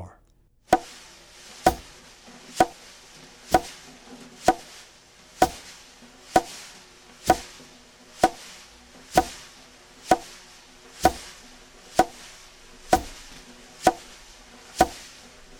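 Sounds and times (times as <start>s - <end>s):
jazz drumming with brushes: 0.7s - 0.9s, 1.7s - 1.9s, 2.6s - 2.9s, 3.5s - 4.7s, 5.4s - 5.7s, 6.3s - 6.6s, 7.3s - 7.6s, 8.2s - 9.5s, 11.0s - 11.4s, 12.9s - 14.1s, 14.8s - 15.1s.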